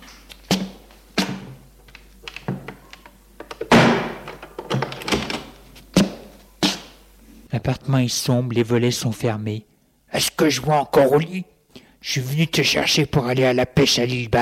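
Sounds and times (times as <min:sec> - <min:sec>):
apartment door shutting with dull wooden thunks: 0:03.6 - 0:05.5
speech: 0:07.6 - 0:14.4.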